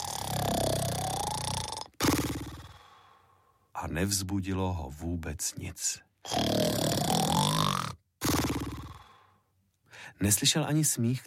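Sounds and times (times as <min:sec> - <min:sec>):
sloth snoring: 0:00.0 - 0:03.0, 0:06.2 - 0:09.3
speech: 0:03.8 - 0:07.1, 0:10.2 - 0:11.2.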